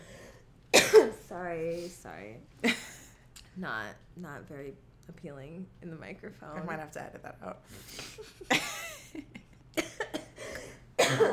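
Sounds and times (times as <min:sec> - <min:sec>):
sick person coughing harshly: 0:00.8 - 0:01.2, 0:09.8 - 0:11.3
speech: 0:01.3 - 0:02.9, 0:03.6 - 0:09.4.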